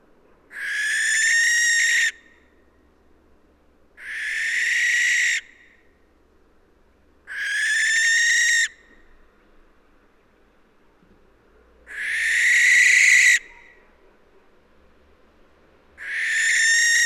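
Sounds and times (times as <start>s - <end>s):
barn owl (Tyto alba) screeching with rasping hisses: 0.5s - 2.2s, 4.0s - 5.6s, 7.3s - 8.8s, 11.9s - 13.5s, 16.0s - 17.0s.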